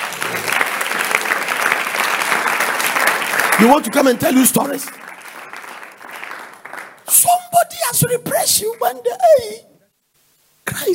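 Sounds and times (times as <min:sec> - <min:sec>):
congregation applauding: 0:00.0 - 0:09.4
speech: 0:03.6 - 0:05.1, 0:08.0 - 0:09.7.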